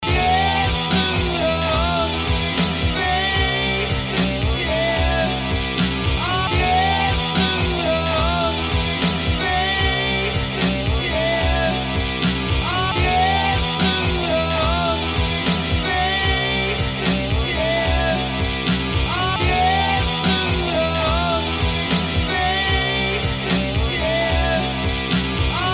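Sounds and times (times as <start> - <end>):
guitar loop: 0.0 - 25.7.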